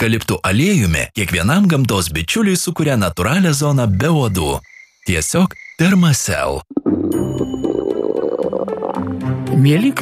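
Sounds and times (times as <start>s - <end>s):
speech: 0.0s - 7.4s, 9.6s - 10.0s
frog calling: 3.9s - 9.2s.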